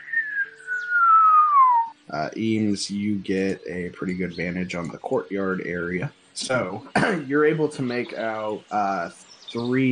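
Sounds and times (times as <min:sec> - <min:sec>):
whistled tone sliding downward imitating a slide whistle: 0:00.0 - 0:02.7
speech: 0:02.1 - 0:09.9.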